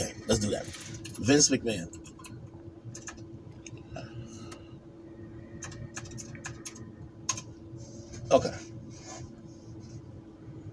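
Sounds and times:
steady low hum: 0.0s - 10.7s
speech: 0.4s - 2.0s, 8.3s - 8.6s
typing a search on a computer keyboard: 2.1s - 3.2s, 5.6s - 7.5s.

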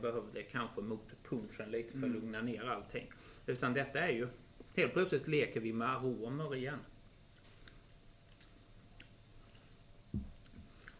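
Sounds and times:
speech: 0.0s - 6.9s
chewing crunchy chewy raw chocolate with berries: 7.3s - 10.9s.

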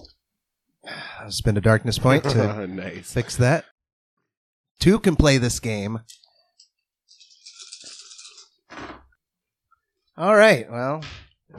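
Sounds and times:
speech: 1.2s - 3.7s, 4.8s - 6.2s, 10.2s - 11.5s
dice rattling and tumbling across a hard tabletop in a tabletop game: 7.1s - 8.5s.

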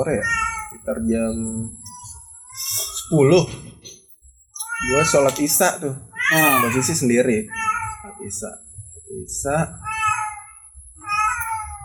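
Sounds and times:
speech: 0.0s - 1.8s, 3.1s - 3.9s, 4.8s - 9.9s
cat meowing: 0.1s - 3.1s, 4.6s - 8.3s, 9.8s - 11.8s.

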